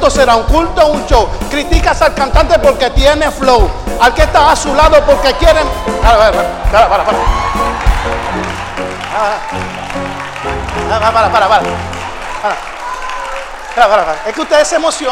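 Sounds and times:
speech: 0.0 - 8.6, 9.2 - 12.7, 13.8 - 15.0
large audience shouting and cheering: 4.3 - 15.0
scattered whoops: 5.1 - 6.4, 7.0 - 10.5, 12.2 - 14.2.

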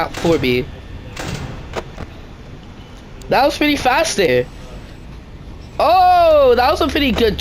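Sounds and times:
speech: 0.0 - 0.8, 3.3 - 4.6, 5.8 - 7.4
video game security door sliding shut: 0.0 - 2.2
low hum: 0.0 - 7.4.

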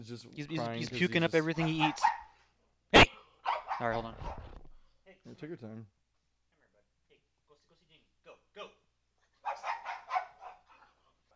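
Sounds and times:
speech: 0.0 - 2.2, 3.8 - 4.4, 5.2 - 6.0
dog barking: 1.5 - 2.4, 3.4 - 4.6, 9.4 - 11.0.

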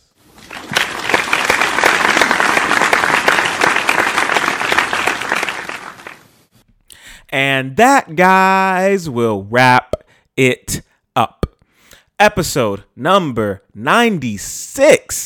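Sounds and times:
audience applause for a guest at the end of a show: 0.2 - 6.4
speech: 7.3 - 11.4, 12.2 - 15.2.

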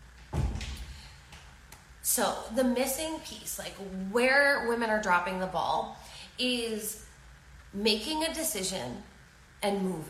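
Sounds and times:
door swinging shut with a muffled thud: 0.3 - 1.0
speech: 2.1 - 7.1, 7.7 - 10.0.

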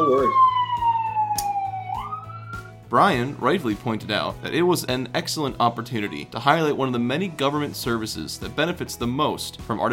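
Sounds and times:
ambulance siren wailing: 0.0 - 2.8
speech: 0.1 - 0.6, 2.9 - 9.9.

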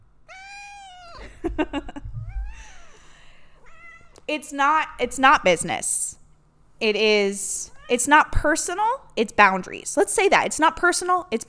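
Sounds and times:
pet cat meowing loudly: 0.3 - 1.2, 3.6 - 4.2
speech: 1.5 - 2.0, 4.3 - 6.0, 6.8 - 11.4.

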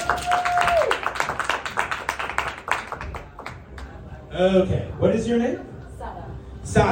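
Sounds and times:
crowd applauding a volunteer from the audience: 0.0 - 4.0
speech: 4.4 - 5.7, 6.7 - 6.9.

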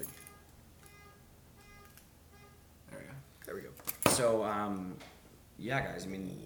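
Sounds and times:
keys jingling while pulled from a pants pocket: 0.0 - 2.1, 3.3 - 4.4
speech: 4.2 - 6.4.

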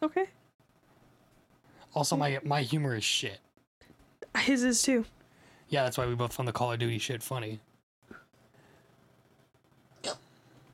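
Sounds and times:
speech: 0.0 - 0.4, 2.0 - 3.5, 4.5 - 7.7
faint gulp: 10.0 - 10.3
hiccup blended with a burp: 10.0 - 10.3.

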